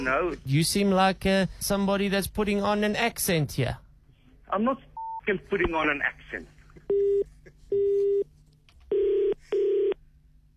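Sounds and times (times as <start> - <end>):
speech: 0.0 - 3.8, 4.5 - 8.0
faint hum on a telephone line: 0.0 - 10.5
telephone line tone beeps after a hang-up: 6.9 - 8.3, 8.9 - 10.0.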